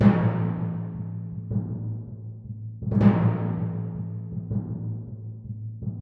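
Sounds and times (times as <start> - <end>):
timpani in movie music: 0.0 - 5.9.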